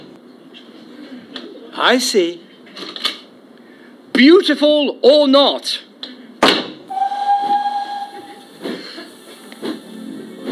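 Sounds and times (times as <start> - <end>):
speech: 1.8 - 2.9, 4.2 - 5.9
steam train whistle blowing a steady tone: 6.9 - 8.8
steam hissing burst: 6.9 - 10.5.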